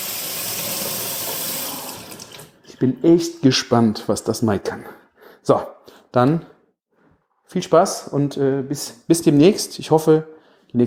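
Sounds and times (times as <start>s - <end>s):
kitchen tap water running into a sink for washing peppers: 0.0s - 2.5s
speech: 2.8s - 6.5s, 7.5s - 10.8s.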